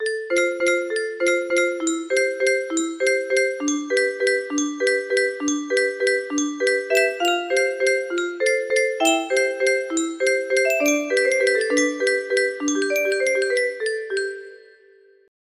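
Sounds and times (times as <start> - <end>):
music box waltz melody: 0.0 - 15.3.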